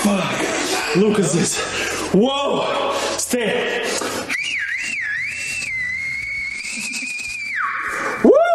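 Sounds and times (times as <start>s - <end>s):
speech: 1.0s - 4.2s
high whistle from a video being played: 4.3s - 8.5s.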